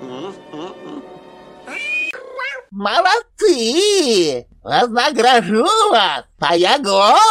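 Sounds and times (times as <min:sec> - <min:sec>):
cat meowing and yowling: 0:01.7 - 0:02.7
speech: 0:02.8 - 0:07.2.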